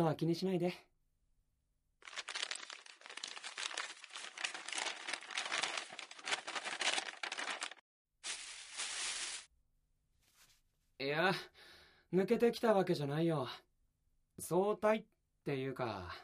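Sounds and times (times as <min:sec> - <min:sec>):
speech: 0:00.0 - 0:00.9, 0:11.2 - 0:13.7, 0:14.4 - 0:16.2
paper bag crinkling and rustling as it is opened: 0:02.0 - 0:09.5.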